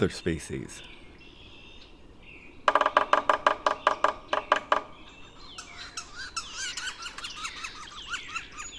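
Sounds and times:
speech: 0:00.0 - 0:01.0
birds chirping and twittering: 0:00.0 - 0:08.7
yellow-bellied sapsuckers giving nasal squealing calls in woods: 0:02.6 - 0:08.7.

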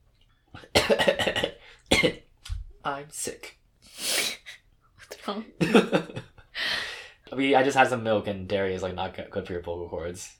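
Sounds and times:
speech: 0:00.6 - 0:01.1, 0:02.9 - 0:03.6, 0:05.3 - 0:06.3, 0:07.4 - 0:10.3
person clearing throat: 0:00.6 - 0:02.3.

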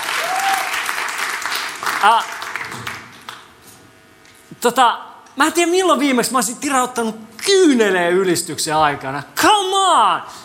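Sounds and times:
sustained crowd applause: 0:00.0 - 0:03.4
speech: 0:02.0 - 0:02.9, 0:04.6 - 0:10.4.

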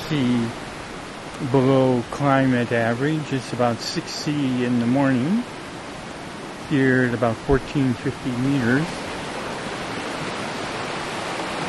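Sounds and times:
flowing river water at about 1450 meters elevation: 0:00.0 - 0:11.6
speech: 0:00.1 - 0:00.6, 0:01.4 - 0:05.6, 0:06.7 - 0:09.0.

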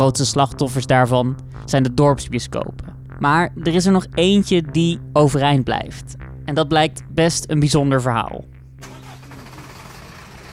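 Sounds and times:
speech: 0:00.0 - 0:08.9
work van driving past: 0:08.8 - 0:10.5.

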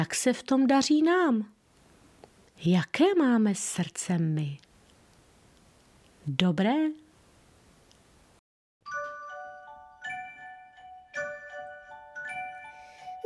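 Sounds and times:
speech: 0:00.0 - 0:01.6, 0:02.6 - 0:04.7, 0:06.3 - 0:07.0
tinkling closing jingle of ringing bells ending a fairy tale: 0:08.9 - 0:13.2.

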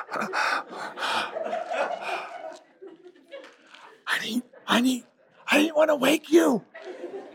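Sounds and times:
person imitating a child's heavy breathing: 0:00.0 - 0:02.4
laughter: 0:00.0 - 0:05.7, 0:06.4 - 0:07.3
speech: 0:00.1 - 0:02.1, 0:04.2 - 0:06.7.

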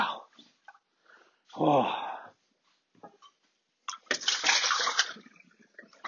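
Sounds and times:
speech: 0:01.6 - 0:02.0
water gushing from a tap into a dog's water bowl: 0:04.0 - 0:06.0.

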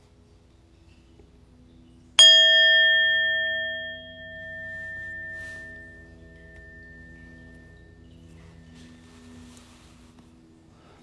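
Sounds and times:
meditation bell struck and ringing: 0:02.2 - 0:10.1.

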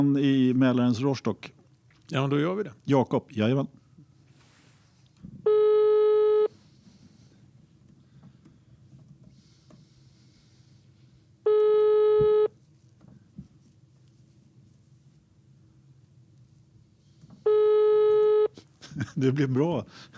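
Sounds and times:
speech: 0:00.0 - 0:03.8, 0:19.2 - 0:20.1
faint low hum: 0:00.0 - 0:20.1
buzzy telephone ringing tone on a call to a friend: 0:05.5 - 0:06.6, 0:11.5 - 0:12.5, 0:17.4 - 0:18.6
laughter: 0:18.6 - 0:20.1.

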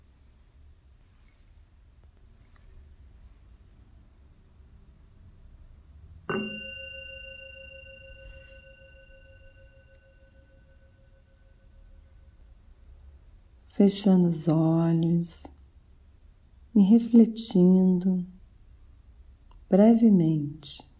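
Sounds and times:
quiet hiss: 0:00.0 - 0:20.9
mindfulness meditation bell ringing: 0:06.3 - 0:12.8
speech: 0:13.8 - 0:15.6, 0:16.8 - 0:18.4, 0:19.7 - 0:20.9.

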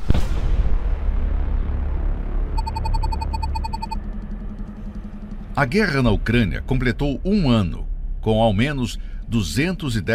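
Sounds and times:
meteor explosion boom: 0:00.0 - 0:01.9
long low rumble of meteor explosion: 0:00.0 - 0:10.1
rapid electronic beeping: 0:02.6 - 0:04.0
speech: 0:05.6 - 0:10.1.

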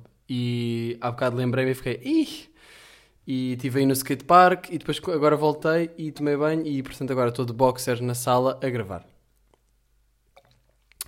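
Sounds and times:
speech: 0:00.3 - 0:09.1
person sipping cold beer: 0:09.4 - 0:11.0.

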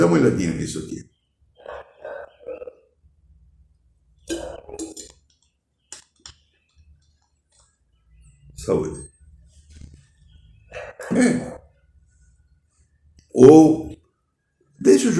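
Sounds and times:
speech: 0:00.0 - 0:01.1, 0:08.7 - 0:09.1, 0:11.1 - 0:11.6, 0:13.4 - 0:13.9, 0:14.8 - 0:15.1
glass clinking: 0:04.3 - 0:05.2.

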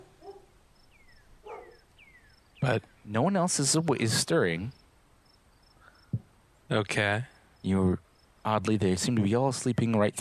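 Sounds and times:
dog barking: 0:00.0 - 0:00.6, 0:01.4 - 0:01.9
speech: 0:02.6 - 0:04.8, 0:06.7 - 0:10.1.

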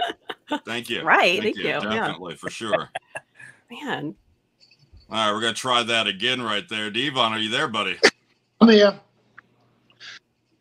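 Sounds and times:
laughter: 0:00.0 - 0:03.5, 0:05.1 - 0:08.1
quiet hum: 0:00.0 - 0:10.0
speech: 0:00.5 - 0:03.0, 0:03.7 - 0:04.2, 0:05.1 - 0:09.0
person sneezing: 0:01.4 - 0:02.2.

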